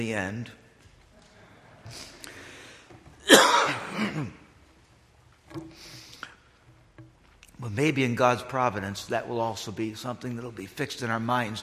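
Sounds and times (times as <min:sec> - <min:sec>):
speech: 0:00.0 - 0:00.6, 0:01.9 - 0:02.1, 0:03.7 - 0:04.4, 0:07.6 - 0:11.6
throaty breaths: 0:01.2 - 0:03.0
person coughing harshly: 0:03.2 - 0:04.4.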